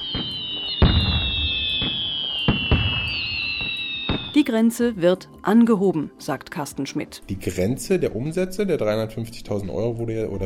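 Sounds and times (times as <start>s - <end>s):
New Year's Eve fireworks exploding: 0.0s - 4.4s
steady high whistling tone: 0.0s - 4.4s
speech: 4.5s - 10.4s.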